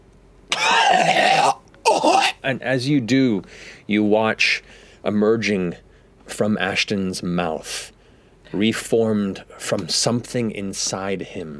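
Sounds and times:
harsh rasping cough from a seated person convulsing: 0.5 - 2.4
speech: 2.0 - 7.9, 8.5 - 11.5.

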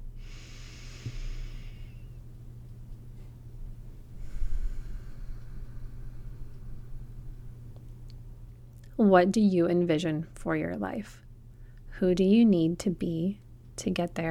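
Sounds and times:
low hum: 0.0 - 14.2
deep breath: 0.2 - 2.2, 4.1 - 7.8
speech: 9.0 - 11.2, 12.0 - 14.2.

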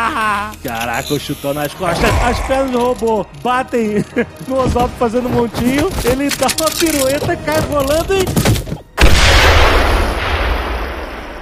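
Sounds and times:
speech: 0.2 - 8.5
laughter: 3.8 - 4.6
grenade explosion: 9.0 - 11.3.

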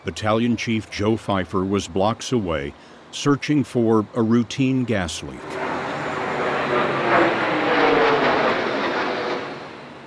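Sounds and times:
speech: 0.0 - 5.6
low-flying jet airliner roaring overhead along the Hudson River: 5.3 - 10.0.

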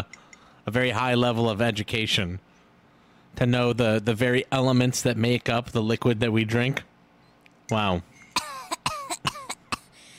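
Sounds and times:
speech: 0.7 - 2.5, 3.4 - 6.9, 7.7 - 8.1
person coughing after drinking water: 8.3 - 10.0.

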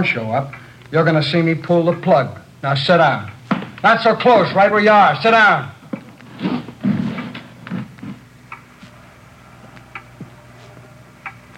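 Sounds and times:
clock ticking: 0.0 - 4.8
speech: 0.0 - 5.8
low hum: 0.0 - 11.5.

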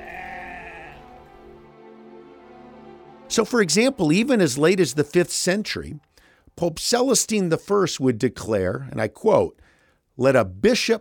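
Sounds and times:
sheep bleating: 0.0 - 1.2
speech: 3.3 - 11.0.

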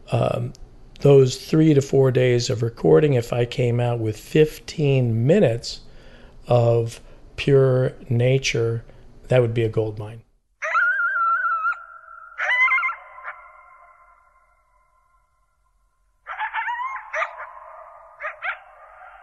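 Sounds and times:
speech: 0.1 - 5.8, 6.5 - 10.2
pack of coyotes howling and yipping: 10.6 - 15.3, 16.2 - 19.2.

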